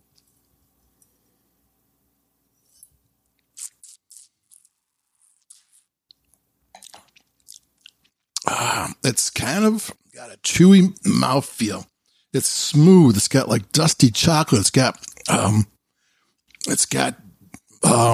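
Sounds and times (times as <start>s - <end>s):
sipping and wet mouth smacking tasting Cabernet Sauvignon red wine: 3.4s - 4.7s, 5.5s - 8.6s, 15.0s - 15.4s
speech: 9.0s - 15.7s, 16.6s - 17.2s, 17.8s - 18.1s.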